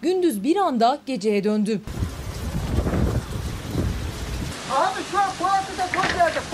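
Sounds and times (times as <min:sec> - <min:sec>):
speech: 0:00.0 - 0:02.1, 0:04.7 - 0:06.5
sandstorm wind blowing over town: 0:01.9 - 0:06.5.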